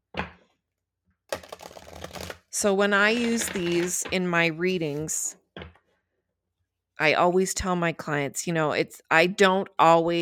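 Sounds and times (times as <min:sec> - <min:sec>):
tarot deck being shuffled: 0:01.3 - 0:02.5, 0:03.1 - 0:04.1
speech: 0:02.6 - 0:05.4, 0:07.0 - 0:10.2.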